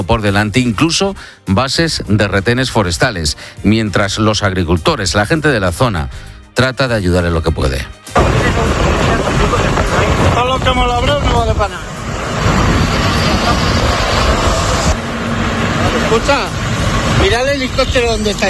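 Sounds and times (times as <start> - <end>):
speech: 0.0 - 8.8, 10.2 - 12.0, 16.1 - 16.6, 17.2 - 18.4
column of tractor engines rumbling while cutting firebreaks against a wildfire: 8.2 - 18.4
heavy wind buffeting the microphone: 8.2 - 18.4
helicopter droning overhead: 8.2 - 18.4.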